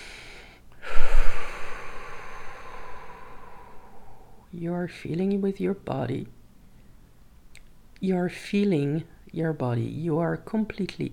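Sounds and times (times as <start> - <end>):
deep breath in and out: 0.0 - 4.5
speech: 4.5 - 6.4, 8.0 - 11.1.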